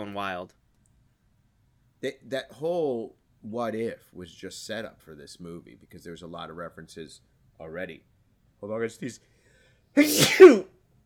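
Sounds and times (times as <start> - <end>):
speech: 0.0 - 0.6, 2.0 - 9.3, 10.0 - 10.7
sneeze: 10.0 - 10.8.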